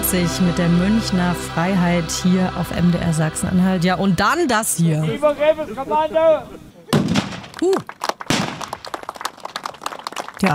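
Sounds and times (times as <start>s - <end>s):
speech: 0.1s - 6.6s, 7.6s - 8.0s
cannon salute blasts: 6.9s - 7.5s, 8.3s - 8.7s.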